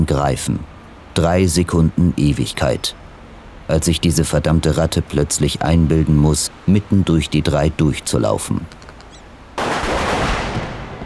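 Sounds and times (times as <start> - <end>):
speech: 0.0 - 3.0, 3.7 - 8.9
gunshots echoing in a parking garage: 9.6 - 11.0.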